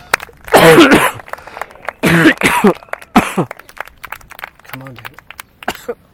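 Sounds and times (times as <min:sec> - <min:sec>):
harsh rasping coughing fit: 0:00.5 - 0:01.2, 0:02.0 - 0:03.5, 0:05.6 - 0:06.0
speech: 0:02.6 - 0:02.8, 0:03.4 - 0:03.6.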